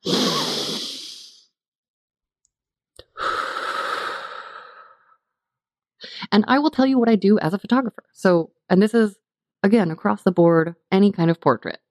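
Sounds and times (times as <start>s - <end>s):
long deep breath: 0.0s - 1.5s, 3.0s - 5.2s
speech: 6.3s - 11.8s.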